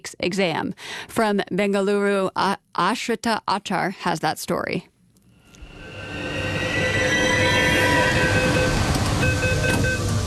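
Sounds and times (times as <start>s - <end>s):
speech: 0.2s - 4.9s
faint high squeals and hums: 5.4s - 10.2s
steady rumble of the metro train: 5.6s - 10.2s
metro train doors opening at a station: 7.5s - 10.2s.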